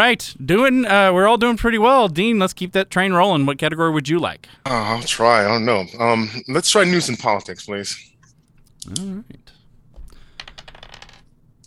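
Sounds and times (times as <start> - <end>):
speech: 0.0 - 8.1, 8.8 - 9.6
dice rolling during a trivia quiz game: 10.0 - 11.3.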